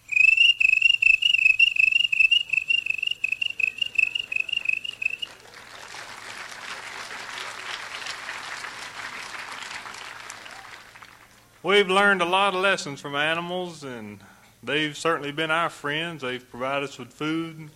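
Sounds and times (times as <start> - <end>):
single cricket trilling: 0.1 - 5.2
speech: 11.6 - 17.7.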